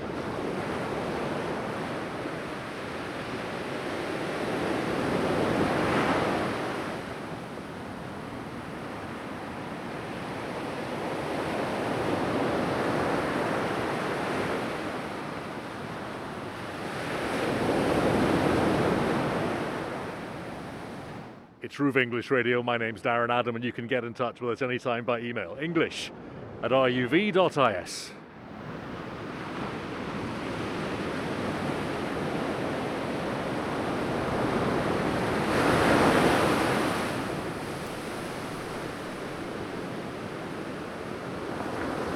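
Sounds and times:
sea waves breaking on a black sand beach: 0.0s - 21.5s, 25.2s - 42.1s
speech: 21.7s - 28.2s.

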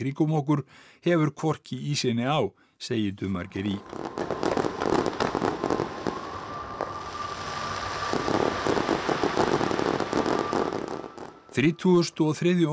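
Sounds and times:
speech: 0.0s - 4.2s, 11.6s - 12.7s
fireworks bursting at an Olympic Games closing ceremony: 3.6s - 11.7s.

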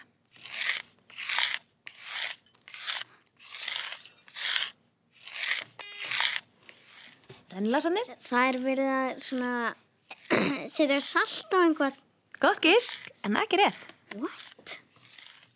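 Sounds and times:
gritty scraping strokes: 0.4s - 15.5s
glassy tinkle: 5.8s - 6.2s
speech: 7.5s - 9.8s, 10.7s - 14.4s.

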